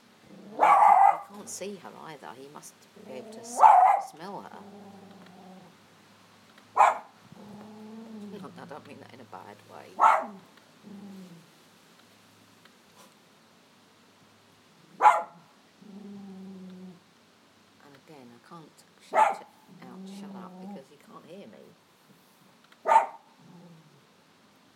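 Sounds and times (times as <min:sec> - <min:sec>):
old deaf poodle barking: 0:00.6 - 0:01.3, 0:03.5 - 0:04.2, 0:06.8 - 0:07.1, 0:10.0 - 0:10.4, 0:15.0 - 0:15.4, 0:19.1 - 0:19.5, 0:22.8 - 0:23.3
speech: 0:01.5 - 0:05.2, 0:08.6 - 0:11.5.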